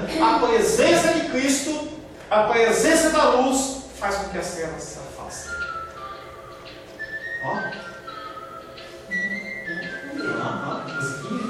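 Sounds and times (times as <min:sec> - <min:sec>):
busy noise: 0:00.0 - 0:11.4
speech: 0:00.1 - 0:05.6, 0:07.4 - 0:07.9
long steady high-pitched whistle: 0:05.4 - 0:11.4.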